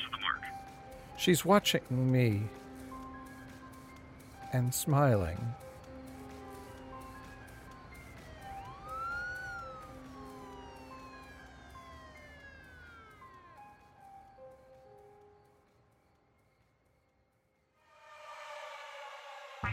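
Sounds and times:
speech: 1.2s - 2.6s, 4.5s - 5.6s
emergency vehicle siren wailing: 6.2s - 15.2s.

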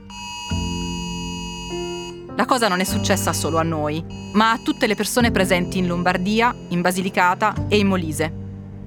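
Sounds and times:
emergency alert tone from mobile phones in an office: 0.0s - 7.6s
speech: 2.4s - 8.4s.

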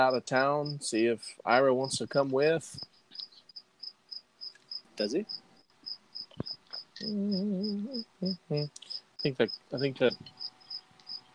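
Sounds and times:
speech: 0.0s - 3.0s, 5.0s - 5.4s, 6.4s - 10.4s
cricket chirping: 0.6s - 0.8s, 2.8s - 11.3s
person humming: 7.0s - 8.9s.

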